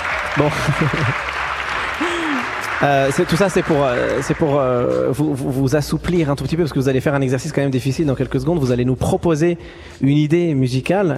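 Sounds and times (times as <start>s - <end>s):
room full of people clapping: 0.0s - 5.3s
laughter: 0.3s - 2.7s
speech: 0.4s - 1.4s, 2.0s - 11.1s.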